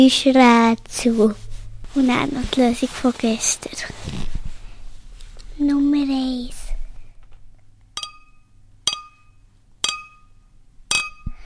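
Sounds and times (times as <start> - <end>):
speech: 0.0 - 4.3, 5.6 - 6.6
glasses clinking together: 8.0 - 11.4.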